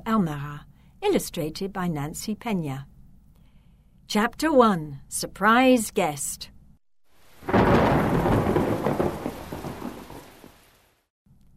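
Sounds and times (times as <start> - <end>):
speech: 0.0 - 2.9, 4.1 - 6.5
steady heavy rain: 7.1 - 11.1
loud thunderclap of a thunderstorm: 7.4 - 10.6.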